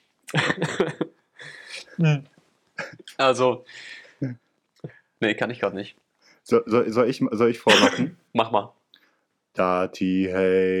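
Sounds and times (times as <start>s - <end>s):
speech: 0.3s - 1.0s, 2.0s - 2.3s, 3.2s - 8.8s, 9.6s - 10.7s
laughter: 0.3s - 1.2s
rapid coughs: 7.7s - 8.2s.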